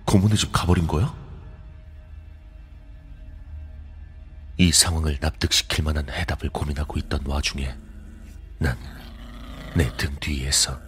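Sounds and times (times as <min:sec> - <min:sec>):
speech: 0:00.1 - 0:01.2, 0:04.6 - 0:07.9, 0:08.6 - 0:09.0, 0:09.7 - 0:10.8
frightened dog growling lowly while baring its teeth: 0:06.9 - 0:10.8.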